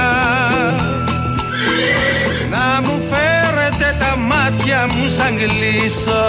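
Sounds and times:
carriage horse hooves clopping: 0:00.7 - 0:06.0
carriage horse whinnying: 0:00.8 - 0:02.6
speech: 0:05.3 - 0:06.2.

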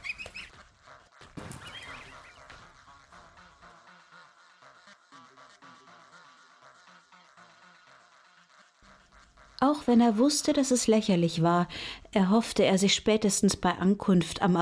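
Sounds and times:
wings flapping: 0:00.0 - 0:09.6
flock of geese honking and quacking: 0:00.0 - 0:10.6
speech: 0:09.6 - 0:14.6.

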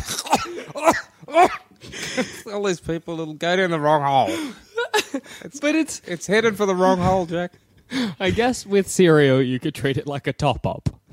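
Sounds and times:
person coughing harshly: 0:00.0 - 0:01.7
speech: 0:02.5 - 0:11.0.

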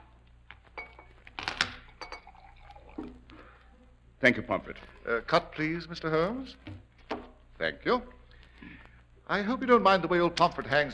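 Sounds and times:
glassware clinking: 0:00.8 - 0:01.2, 0:01.8 - 0:03.1
waiter pouring a drink into an empty glass: 0:01.8 - 0:03.4
speech: 0:04.2 - 0:06.8, 0:07.6 - 0:10.9.

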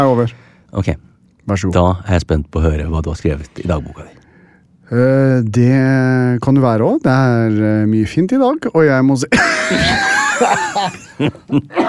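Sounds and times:
speech: 0:00.0 - 0:04.2, 0:04.9 - 0:11.8
laughter: 0:09.3 - 0:11.8
person coughing from an RS virus respiratory infection: 0:09.4 - 0:10.4, 0:11.6 - 0:11.8.

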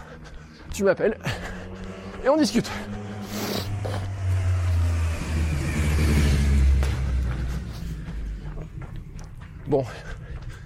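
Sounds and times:
speech: 0:00.8 - 0:01.5, 0:02.2 - 0:03.0, 0:09.7 - 0:10.1
loud motorcycle engine roaring past: 0:01.1 - 0:08.6.

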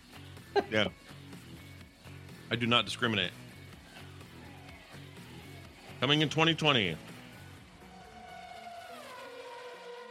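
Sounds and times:
speech: 0:00.6 - 0:01.2, 0:02.5 - 0:03.4, 0:06.0 - 0:07.1
car engine drone: 0:07.7 - 0:10.0.

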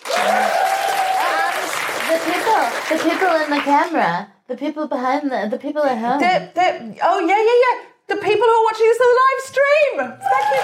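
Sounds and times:
audience applause at a theatre show: 0:00.0 - 0:03.7, 0:10.2 - 0:10.6
speech: 0:02.2 - 0:10.6.

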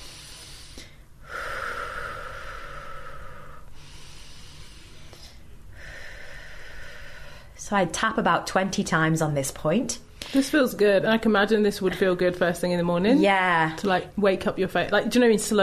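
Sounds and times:
slow deep breathing during a face-tapping exercise: 0:00.0 - 0:07.6
speech: 0:07.7 - 0:15.6.

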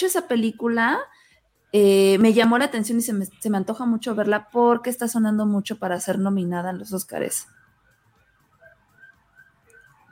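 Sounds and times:
speech: 0:00.0 - 0:07.6
ambulance siren passing outside: 0:03.8 - 0:10.1.

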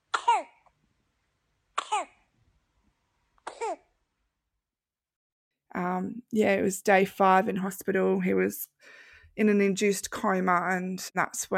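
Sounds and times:
month-old baby coughing: 0:00.0 - 0:00.6, 0:01.8 - 0:02.3, 0:03.4 - 0:03.9
speech: 0:05.8 - 0:11.5.

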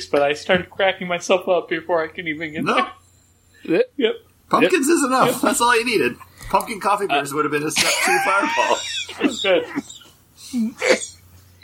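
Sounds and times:
speech: 0:00.0 - 0:03.0, 0:03.6 - 0:09.9, 0:10.5 - 0:11.1
faint low hum: 0:00.0 - 0:11.6
person coughing while laughing: 0:07.9 - 0:11.2.

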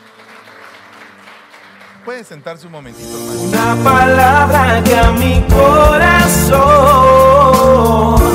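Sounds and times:
crowd applauding: 0:00.0 - 0:02.9
speech: 0:02.0 - 0:08.2.

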